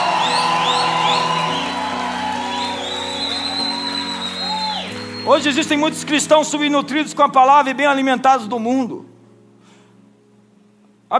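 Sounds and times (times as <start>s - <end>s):
large church audience shouting and cheering: 0.0s - 5.4s
high whoops and whistles: 0.0s - 5.7s
speech: 5.3s - 9.1s.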